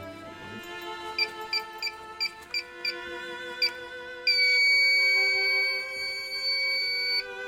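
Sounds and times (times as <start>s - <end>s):
toilet alarm sustained loud steady tone: 1.2s - 7.3s
toilet alarm quick electronic beeps: 3.6s - 7.3s.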